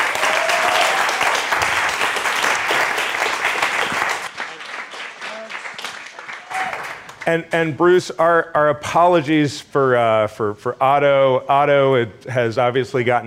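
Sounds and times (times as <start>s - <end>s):
faint cheers: 0.0s - 1.6s, 6.3s - 7.0s
audience in a bar applauding a speaker: 0.0s - 7.3s
speech: 7.3s - 13.2s.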